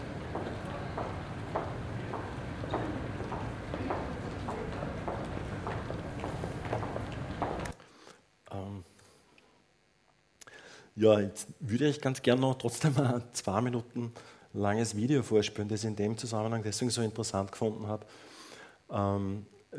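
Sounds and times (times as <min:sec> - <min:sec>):
busy murmur of crowd noise: 0:00.0 - 0:07.7
chatter: 0:00.0 - 0:07.7
footsteps clicking in a pedestrian zone: 0:00.0 - 0:07.8
speech: 0:11.0 - 0:18.3, 0:18.9 - 0:19.7.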